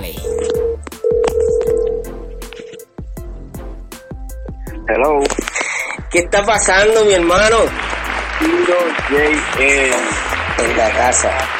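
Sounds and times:
beat-driven music bed with sharp percussive hits: 0.0s - 11.5s
ringback tone of an outgoing phone call: 0.2s - 2.9s
speech: 4.9s - 5.4s, 6.1s - 7.8s, 8.4s - 11.5s.

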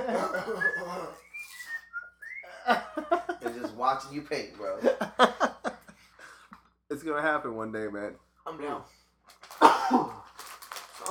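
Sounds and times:
laughter: 0.0s - 1.4s, 2.4s - 6.3s
person whistling a short wavering tune of sliding notes: 0.2s - 2.7s
speech: 3.8s - 5.5s, 7.0s - 9.0s.

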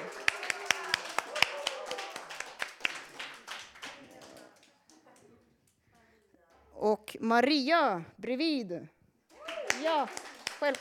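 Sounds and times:
people clapping: 0.0s - 6.1s, 9.3s - 10.7s
speech: 7.2s - 9.0s, 9.8s - 10.7s.

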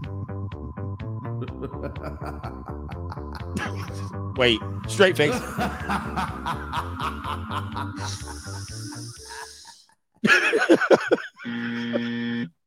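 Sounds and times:
laughter: 1.4s - 4.1s, 5.2s - 12.2s
speech: 1.6s - 2.8s, 4.4s - 9.4s, 10.2s - 11.1s
voiced nasal sound: 7.9s - 9.9s, 11.4s - 12.6s
person sniffing: 8.0s - 9.9s.

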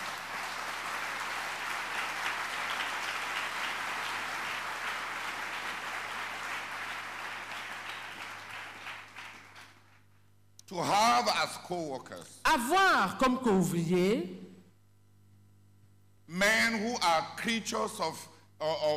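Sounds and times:
crowd applauding: 0.0s - 10.0s
speech: 10.7s - 14.4s, 16.3s - 18.9s.

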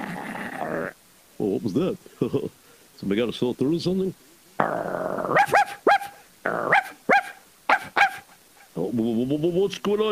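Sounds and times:
Doberman Pinschers growling: 0.0s - 1.0s, 4.6s - 5.6s, 6.4s - 7.0s
speech: 0.8s - 5.7s, 8.9s - 10.0s
Doberman Pinschers barking: 5.2s - 8.4s.

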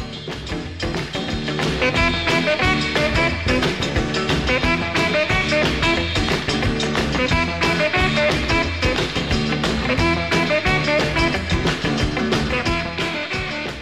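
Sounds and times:
full band backing: 0.0s - 13.7s
steady drums: 0.0s - 13.7s
saxophone playing a lively melody: 1.8s - 6.5s, 7.2s - 11.9s, 12.5s - 13.7s.

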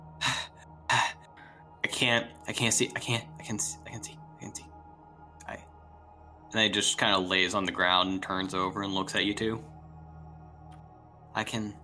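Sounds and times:
voice imitating feverish gasping: 0.2s - 1.6s
speech: 2.0s - 4.7s, 6.5s - 9.7s, 11.4s - 11.8s.

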